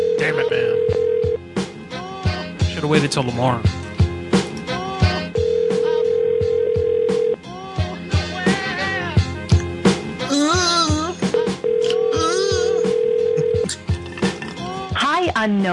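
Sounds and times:
outgoing call ringback tone to a grill restaurant: 0.0 - 1.4, 5.4 - 7.4, 11.4 - 13.7
busy music: 0.0 - 15.7
speech: 2.8 - 3.8, 15.4 - 15.7.

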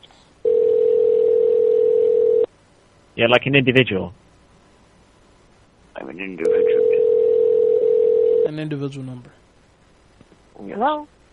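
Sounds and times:
telephone dial tone while placing a call to the UK: 0.5 - 2.5, 6.5 - 8.4
speech: 3.2 - 4.2, 6.0 - 6.7, 8.5 - 9.4, 10.6 - 11.2.

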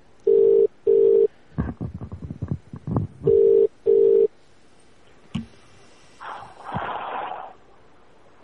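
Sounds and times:
telephone ringback tones during an outgoing call to a cell phone: 0.3 - 1.3, 3.3 - 4.3.

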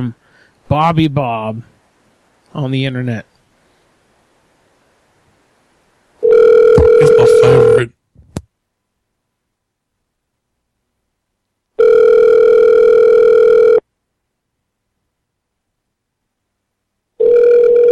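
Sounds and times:
speech: 0.0 - 1.7, 2.5 - 3.3, 7.0 - 8.0
telephone ringing on a prank call: 6.2 - 7.9, 11.8 - 13.8, 17.2 - 17.9.

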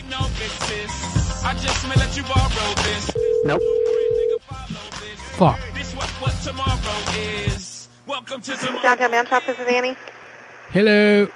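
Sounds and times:
busy music: 0.0 - 9.3
speech: 1.4 - 3.9, 5.4 - 5.7, 8.2 - 10.1, 10.7 - 11.3
electronic ringback tone of an outgoing phone call to a barbershop: 3.2 - 4.4.

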